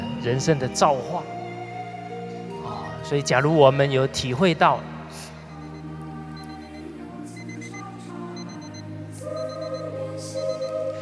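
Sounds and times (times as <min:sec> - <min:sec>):
speech: 0:00.2 - 0:01.4, 0:03.0 - 0:04.9
sustained musical drone: 0:00.9 - 0:11.0
alarm clock beeping: 0:05.4 - 0:10.8.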